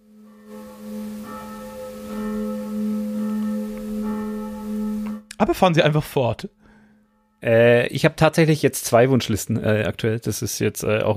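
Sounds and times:
evening church bells ringing in the southern district of Nuremberg: 0:00.0 - 0:05.9
speech: 0:05.4 - 0:06.6, 0:07.4 - 0:11.1.

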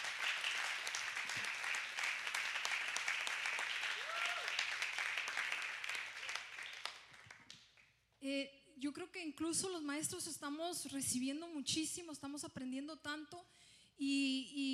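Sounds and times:
church congregation applauding: 0:00.0 - 0:07.9
speech: 0:08.2 - 0:14.7.

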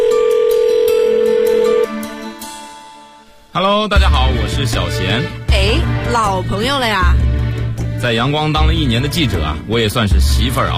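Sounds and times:
telephone line tone as a listener's call connects: 0:00.0 - 0:02.0
speech: 0:03.6 - 0:07.3, 0:08.0 - 0:10.7.

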